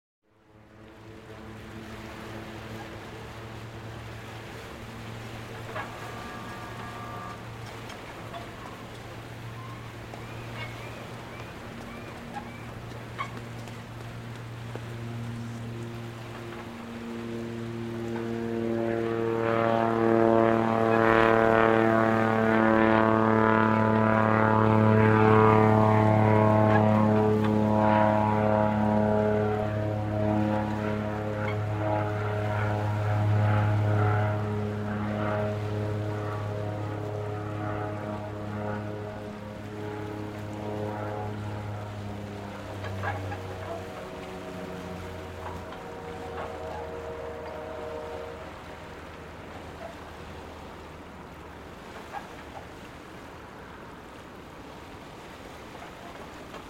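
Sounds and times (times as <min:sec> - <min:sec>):
harbour ambience: 0:00.3 - 0:56.6.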